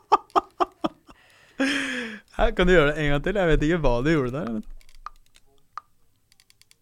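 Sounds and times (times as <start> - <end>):
laughter: 0.0 - 2.0
speech: 2.4 - 4.7
person's jaw joint clicking: 4.2 - 6.8.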